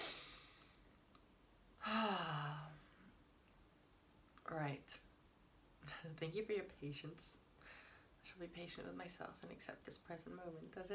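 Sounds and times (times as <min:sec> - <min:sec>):
person taking a breathy intake of air: 0:00.0 - 0:00.6
speech: 0:04.5 - 0:05.1, 0:05.8 - 0:10.9.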